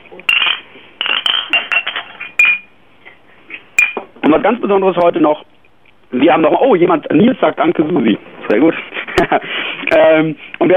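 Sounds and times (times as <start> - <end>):
glasses clinking together in a toast: 0.2 - 2.7, 3.8 - 4.1
speech: 4.3 - 5.5, 6.1 - 10.7.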